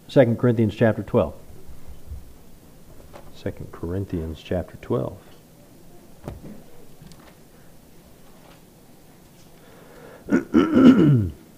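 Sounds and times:
speech: 0.1 - 1.4, 3.4 - 5.3, 6.2 - 6.6
person clearing throat: 10.3 - 11.5.

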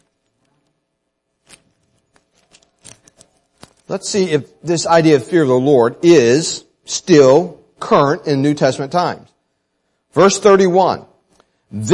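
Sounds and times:
thin Bible pages being turned: 1.4 - 4.0
speech: 3.9 - 9.3, 10.1 - 11.1, 11.7 - 11.9.

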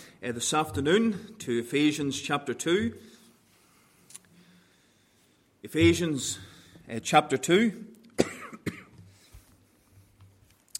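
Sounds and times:
speech: 0.2 - 3.1, 5.6 - 7.9
coughing: 8.2 - 9.0.

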